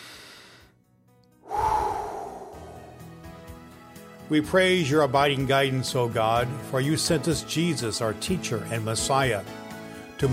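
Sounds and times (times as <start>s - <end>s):
deep breath drawn in before a prayer: 0.0s - 0.8s, 1.4s - 3.2s
speech: 4.3s - 9.6s, 10.2s - 10.3s.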